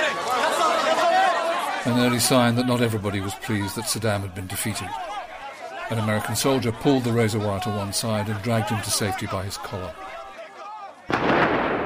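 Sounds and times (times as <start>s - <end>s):
laughter: 0.0s - 10.4s
speech: 1.8s - 5.1s, 5.9s - 10.2s
loud gunfire burst: 11.1s - 11.8s.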